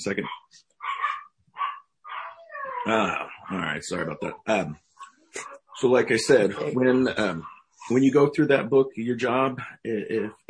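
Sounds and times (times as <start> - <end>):
speech: 0.0 - 0.7, 2.8 - 4.8, 5.4 - 10.4
dogs barking: 0.2 - 4.4, 5.0 - 7.8.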